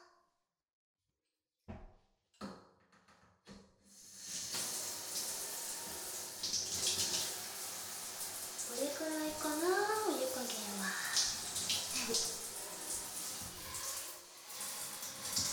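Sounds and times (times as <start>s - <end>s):
warm water spraying as hair is rinsed before shampooing: 4.1s - 15.5s.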